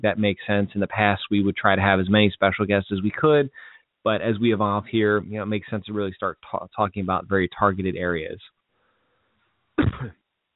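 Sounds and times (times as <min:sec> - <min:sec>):
speech: 0:00.0 - 0:08.6, 0:09.8 - 0:10.2
throat clearing: 0:09.8 - 0:10.2.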